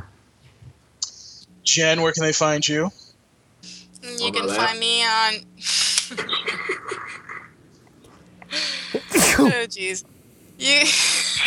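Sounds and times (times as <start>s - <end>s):
speech: 1.7s - 3.0s, 4.3s - 7.2s, 9.4s - 11.4s
laughter: 5.6s - 7.6s, 10.7s - 11.4s
loud sneeze: 9.0s - 9.6s.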